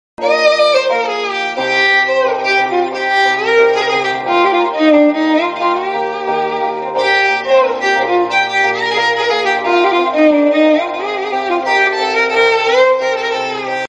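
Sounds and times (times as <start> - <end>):
romantic violin instrumental: 0.2 - 13.8.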